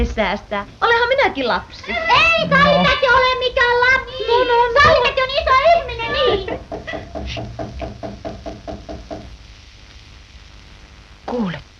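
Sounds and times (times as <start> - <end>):
speech: 0.0 - 7.8, 11.3 - 11.6
laughter: 1.8 - 3.0, 4.1 - 5.0, 5.7 - 7.2
knocking on a door: 6.2 - 9.3.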